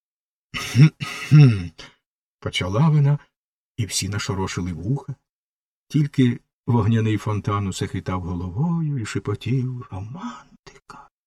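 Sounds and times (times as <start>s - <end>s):
voice imitating a firework rocket coughing: 0.6s - 1.8s
speech: 0.8s - 5.2s, 5.9s - 11.1s.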